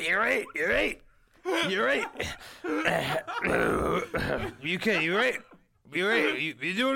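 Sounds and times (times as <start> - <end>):
speech: 0.1 - 1.0, 1.6 - 3.7, 4.3 - 6.9
man imitating heavy breathing of sex: 2.2 - 2.8.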